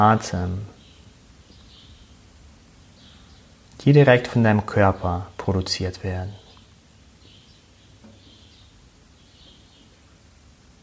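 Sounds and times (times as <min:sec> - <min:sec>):
speech: 0:00.0 - 0:00.7, 0:03.8 - 0:06.4
steady outdoor hiss: 0:00.0 - 0:10.8
faint bird chirps: 0:00.7 - 0:03.6, 0:06.3 - 0:10.2.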